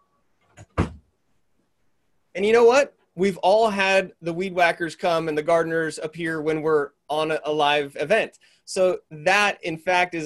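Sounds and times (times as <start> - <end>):
door swinging shut with a solid thud: 0.6 - 1.1
speech: 2.4 - 10.2.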